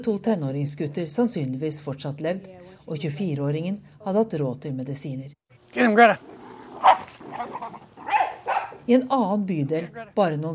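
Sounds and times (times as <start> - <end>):
speech: 0.0 - 7.5, 8.9 - 10.5
dogs barking and whining playfully in a garden: 6.2 - 8.9.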